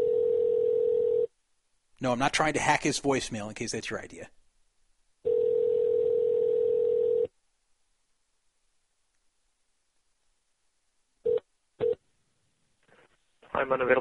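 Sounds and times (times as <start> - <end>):
telephone dial tone: 0.0 - 1.3, 5.3 - 7.3
speech: 2.0 - 4.4, 13.7 - 13.9.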